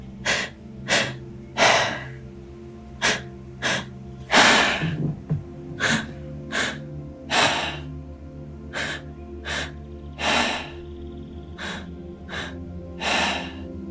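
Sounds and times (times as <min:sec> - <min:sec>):
person breathing with quick sharp inhales and longer exhales: 0:00.2 - 0:02.3, 0:03.0 - 0:05.0, 0:05.7 - 0:08.0, 0:08.7 - 0:10.9, 0:11.5 - 0:13.7.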